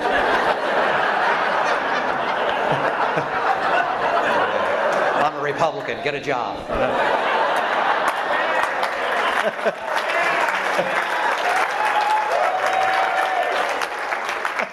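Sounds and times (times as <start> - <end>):
audience applause: 0.0 - 5.5, 6.8 - 14.7
laughter: 0.0 - 14.7
speech: 5.5 - 7.4, 9.4 - 9.9, 10.8 - 11.1
scattered voices and whoops in the crowd: 8.6 - 13.8.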